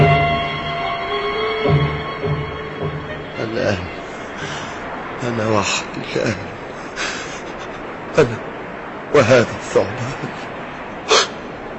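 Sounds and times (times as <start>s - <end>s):
quiet hiss: 0.0s - 11.7s
speech: 3.5s - 4.6s, 5.2s - 6.5s, 8.2s - 8.5s, 9.2s - 10.4s
short sharp sneeze: 11.1s - 11.4s.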